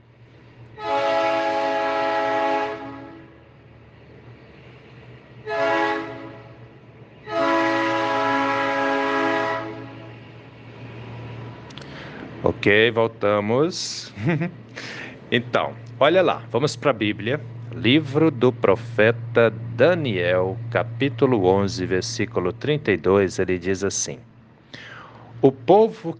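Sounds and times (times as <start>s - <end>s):
steady low rumble of a passing train: 0.0s - 26.1s
train horn blasts: 0.8s - 3.4s, 5.4s - 6.6s, 7.2s - 10.2s
speech: 12.6s - 24.8s, 25.4s - 26.1s
laughter: 14.0s - 15.1s.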